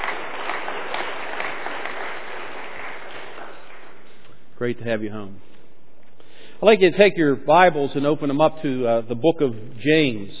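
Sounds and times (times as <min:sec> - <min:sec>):
audience applauding: 0:00.0 - 0:04.2
speech: 0:04.6 - 0:05.5, 0:06.6 - 0:10.3.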